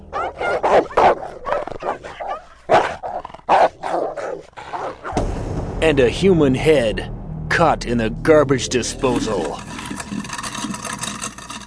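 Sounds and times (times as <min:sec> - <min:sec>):
several dogs snarling and barking in a scuffle: 0:00.0 - 0:05.2
dog yelping and whimpering: 0:00.1 - 0:02.5
speech: 0:05.8 - 0:09.7.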